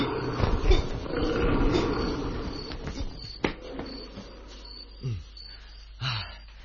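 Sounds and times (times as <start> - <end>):
tiger roaring with a deep rumbling growl: 0.0 - 2.8.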